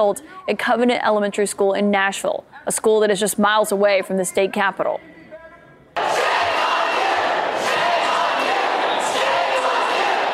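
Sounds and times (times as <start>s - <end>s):
speech: 0.0s - 5.2s
large crowd of protesters booing and shouting: 6.0s - 10.3s.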